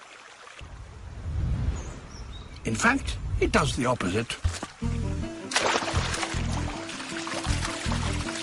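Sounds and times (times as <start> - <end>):
speech: 2.6 - 5.0
basilisk lizard running across a water surface: 5.4 - 8.4.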